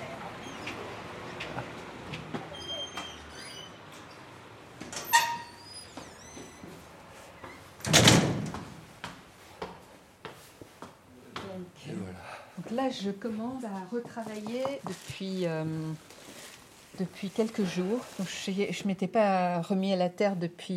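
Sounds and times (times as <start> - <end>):
door opening: 0.4 - 6.8, 7.4 - 8.8
speech: 12.8 - 16.1, 17.0 - 20.7.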